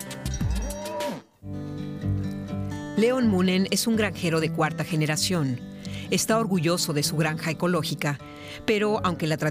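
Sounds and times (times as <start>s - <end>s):
donor cows grazing in fields mooing at a farm in the Netherlands: 0.4s - 1.4s
speech: 3.0s - 9.5s.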